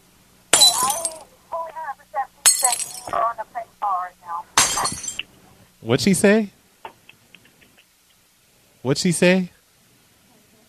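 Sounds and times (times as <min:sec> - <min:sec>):
glass object knocked over and breaking: 0:00.5 - 0:01.3, 0:02.4 - 0:03.2, 0:04.6 - 0:05.2
speech: 0:05.8 - 0:06.6, 0:08.8 - 0:09.6.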